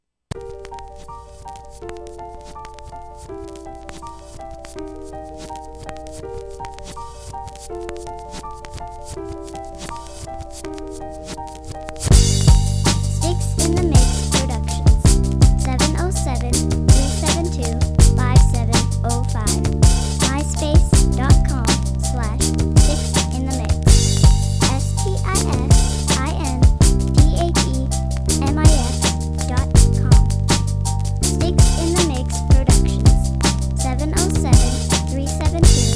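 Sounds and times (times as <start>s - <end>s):
soul piano solo: 0.3s - 35.9s.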